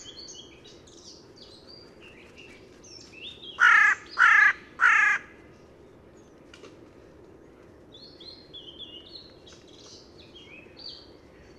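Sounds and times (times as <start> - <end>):
carrion crow hoarse grating caws: 3.6 - 5.4.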